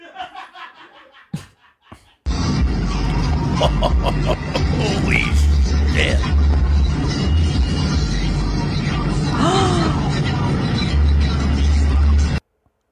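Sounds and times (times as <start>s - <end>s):
laughter: 0.0s - 2.3s, 2.9s - 6.2s
road roar: 2.3s - 12.4s
big truck engine rumble driving on road: 2.4s - 12.4s
speech: 3.6s - 6.4s.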